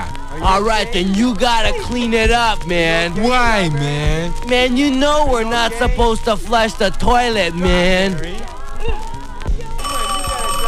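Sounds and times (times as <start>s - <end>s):
low thumps: 0.0s - 9.8s
speech: 0.4s - 9.0s
telephone ringing with a bright electronic tone: 9.8s - 10.6s.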